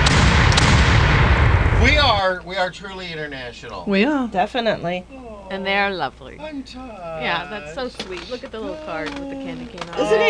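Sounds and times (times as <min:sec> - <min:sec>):
loud deep cannon fire with a heavy low rumble: 0:00.0 - 0:02.4
speech: 0:01.8 - 0:10.2.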